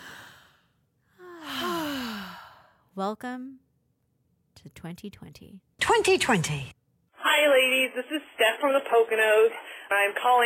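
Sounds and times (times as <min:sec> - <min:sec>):
voiced sigh as breath is let out: 0:00.0 - 0:02.8
deep breath: 0:00.0 - 0:02.9
speech: 0:03.0 - 0:03.7, 0:04.6 - 0:06.8, 0:07.4 - 0:10.4.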